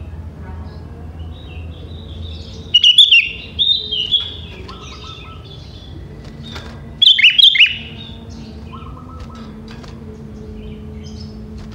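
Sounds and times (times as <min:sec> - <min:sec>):
sooty-headed bulbul song: 0:01.2 - 0:11.7.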